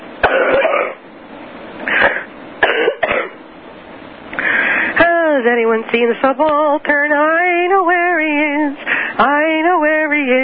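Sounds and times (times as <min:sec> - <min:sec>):
harsh raspy coughs: 0:00.2 - 0:01.0, 0:01.8 - 0:03.4
speech: 0:05.4 - 0:10.4.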